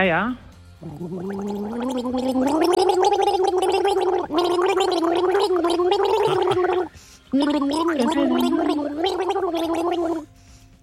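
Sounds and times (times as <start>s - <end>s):
person gargling the melody of a pop hit: 0.8s - 10.3s.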